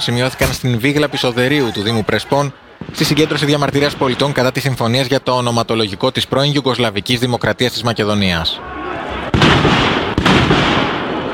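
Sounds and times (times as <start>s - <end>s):
speech: 0.0s - 8.8s
dense crackling and booming: 0.3s - 6.0s, 9.1s - 11.3s.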